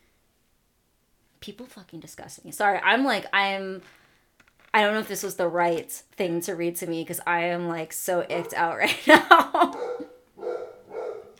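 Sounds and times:
speech: 0:01.5 - 0:04.0, 0:04.7 - 0:09.8
laughter: 0:08.8 - 0:10.0
big male dog barking loudly: 0:09.7 - 0:11.3.

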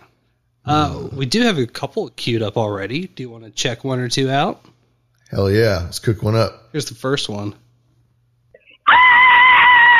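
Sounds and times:
speech: 0:00.7 - 0:07.6
1980s-style horror-movie scream from a caller: 0:08.8 - 0:09.9.

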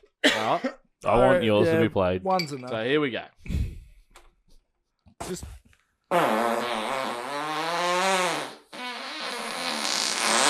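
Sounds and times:
speech: 0:00.4 - 0:03.4, 0:05.3 - 0:06.9
recorded fart played back on podcast: 0:06.1 - 0:10.4.

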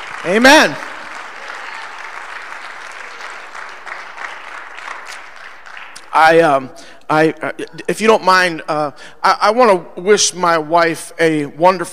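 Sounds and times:
church audience clapping in praise: 0:00.0 - 0:06.5
speech: 0:00.2 - 0:00.9, 0:06.2 - 0:11.9.

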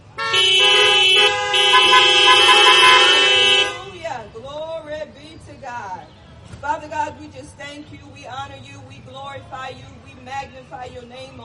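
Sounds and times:
car horns honking: 0:00.0 - 0:04.2
speech: 0:07.3 - 0:11.4.

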